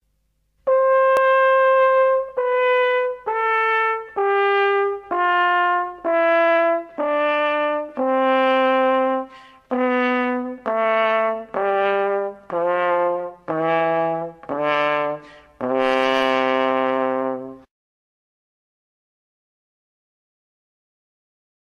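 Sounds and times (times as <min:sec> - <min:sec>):
brass horn going from high to low: 0:00.6 - 0:17.7.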